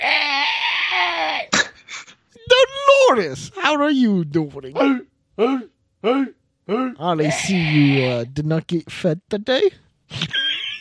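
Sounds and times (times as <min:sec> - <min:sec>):
voice imitating a velociraptor call: 0:00.0 - 0:01.7, 0:05.6 - 0:08.2
speech: 0:03.1 - 0:10.4
laughter: 0:10.1 - 0:10.7.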